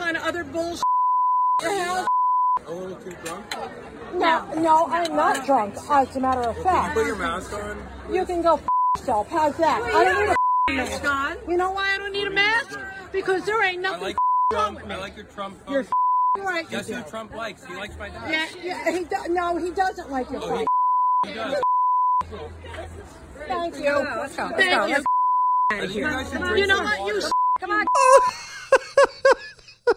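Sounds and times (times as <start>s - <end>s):
speech: 0.3s - 1.0s, 1.6s - 21.6s, 22.3s - 25.1s, 25.7s - 29.4s
steady high censorship bleep: 0.8s - 2.6s, 8.6s - 9.1s, 10.2s - 10.8s, 14.2s - 14.6s, 15.9s - 16.4s, 20.6s - 22.3s, 25.0s - 25.8s, 27.2s - 28.4s
laughter: 27.9s - 29.9s.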